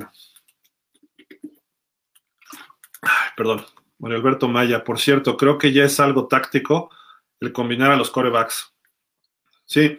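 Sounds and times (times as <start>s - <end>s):
person sipping a drink with lip clicks and gulping swallows: 2.4s - 3.3s
speech: 3.0s - 8.7s, 9.7s - 9.9s
breathy exhale or slurp: 6.9s - 7.3s.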